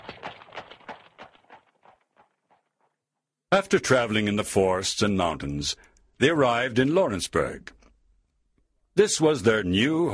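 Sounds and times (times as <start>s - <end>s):
hooves of four strong horses pulling a big covered wagon clip-clopping: 0.0s - 3.0s
speech: 3.5s - 7.8s, 9.0s - 10.1s.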